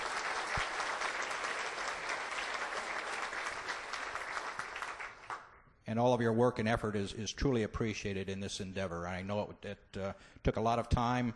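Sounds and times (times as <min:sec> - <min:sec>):
audience applause for staff members' effort: 0:00.0 - 0:05.5
speech: 0:05.9 - 0:11.3.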